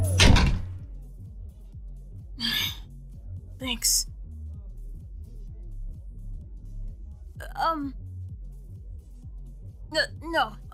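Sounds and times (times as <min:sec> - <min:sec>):
door pushed shut with a solid thud: 0:00.0 - 0:00.8
speech: 0:03.6 - 0:04.1, 0:07.7 - 0:08.0, 0:09.9 - 0:10.7.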